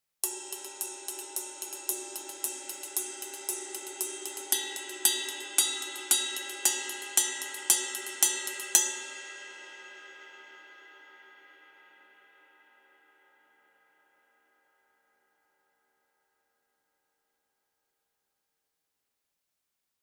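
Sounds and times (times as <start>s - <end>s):
custom 22 heavy ride cymbal: 0.2s - 10.5s.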